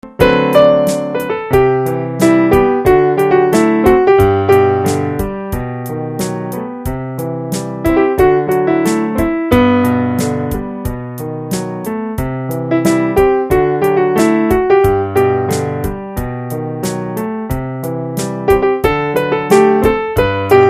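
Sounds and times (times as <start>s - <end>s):
piano note G: 0.0s - 20.6s.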